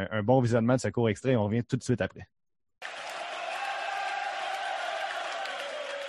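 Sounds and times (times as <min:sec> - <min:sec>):
speech: 0:00.0 - 0:02.4
large baseball stadium crowd cheering: 0:02.8 - 0:06.0.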